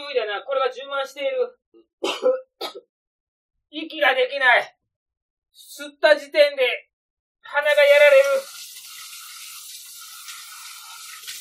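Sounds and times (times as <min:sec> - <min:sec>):
speech: 0:00.3 - 0:02.4, 0:03.7 - 0:04.8, 0:05.6 - 0:08.7
running water from a kitchen tap as dishes are washed: 0:07.7 - 0:11.4.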